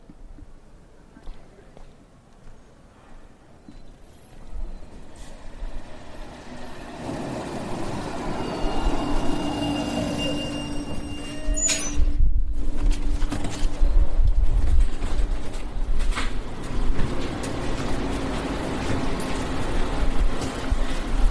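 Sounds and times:
tram rumbling as it approaches: 0:02.7 - 0:21.2
tram air brakes hissing: 0:04.6 - 0:12.1.

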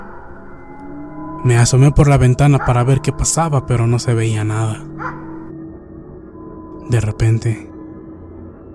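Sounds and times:
speech: 0:01.4 - 0:05.2, 0:06.9 - 0:07.7
dog barking: 0:02.5 - 0:02.9, 0:05.0 - 0:05.4.

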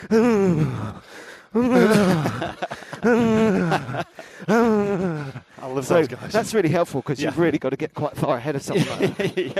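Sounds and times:
speech: 0:00.0 - 0:03.8, 0:05.8 - 0:09.5
man vocally imitating heavy panting of a runner: 0:00.0 - 0:05.7
laughter: 0:01.6 - 0:07.6, 0:08.7 - 0:09.5.

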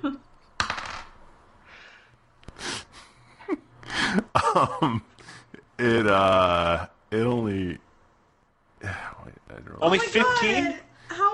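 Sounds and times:
dice clattering across a hard tabletop: 0:00.6 - 0:01.2
speech: 0:04.6 - 0:05.1, 0:05.8 - 0:07.6, 0:09.8 - 0:10.8.

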